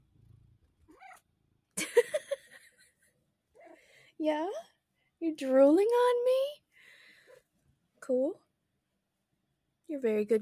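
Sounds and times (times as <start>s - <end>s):
female cat vocalizing while being lifted and held: 0.8s - 1.3s
speech: 4.2s - 6.5s, 8.1s - 8.4s, 9.9s - 10.4s.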